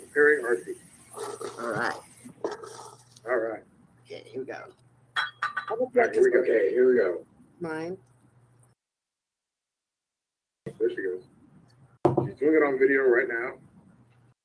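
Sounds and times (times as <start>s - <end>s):
speech: 0.2s - 2.0s, 5.8s - 8.1s, 12.4s - 13.6s
glass cups clinking while preparing tea at a Blood Moon ceremony: 5.2s - 5.8s.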